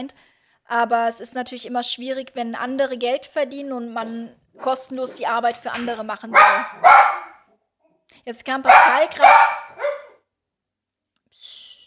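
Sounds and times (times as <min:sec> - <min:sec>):
speech: 0:00.0 - 0:07.2, 0:08.2 - 0:09.6
dog barking at someone coming through the door: 0:04.0 - 0:07.4, 0:08.6 - 0:10.2.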